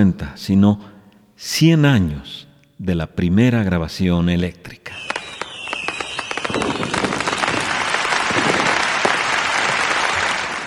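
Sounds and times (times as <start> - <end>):
speech: 0.0 - 5.1
high whistle: 4.9 - 8.0
crowd applause: 5.8 - 10.6.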